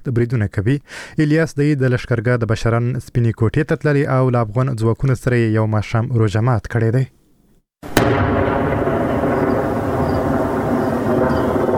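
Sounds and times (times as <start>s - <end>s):
speech: 0.1s - 7.2s
artillery cannon blast supporting Afghan forces near Lashkar Gah: 7.8s - 11.7s
loud steady rumbling roar: 8.0s - 11.7s
faint whining tones: 8.8s - 11.7s.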